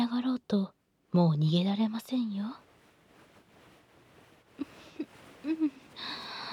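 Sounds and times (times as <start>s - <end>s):
speech: 0.5s - 2.6s, 5.4s - 6.2s
short heavy breaths and longer rough hissing breath: 4.6s - 6.5s.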